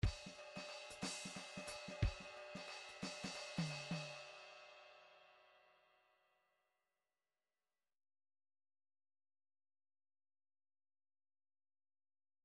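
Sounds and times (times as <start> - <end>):
MIDI drum fills in 3 4: 0.0 - 4.4.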